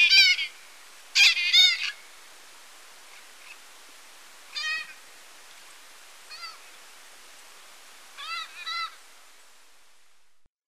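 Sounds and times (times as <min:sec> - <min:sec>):
White-capped parrot giving scratchy nasal squawks in Ecuador: 0:00.0 - 0:00.6, 0:01.2 - 0:02.0, 0:04.5 - 0:05.0, 0:06.3 - 0:06.6, 0:08.2 - 0:09.0.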